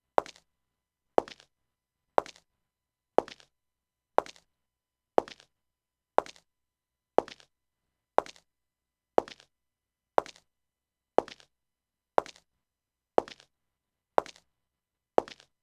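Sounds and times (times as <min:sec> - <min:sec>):
very slow footsteps: 0:04.2 - 0:04.4, 0:05.2 - 0:05.4, 0:06.2 - 0:06.4, 0:07.2 - 0:07.4, 0:08.2 - 0:08.4, 0:09.2 - 0:09.4, 0:10.2 - 0:10.4, 0:11.2 - 0:11.4, 0:12.2 - 0:12.4, 0:13.2 - 0:13.4, 0:14.2 - 0:14.4, 0:15.2 - 0:15.5.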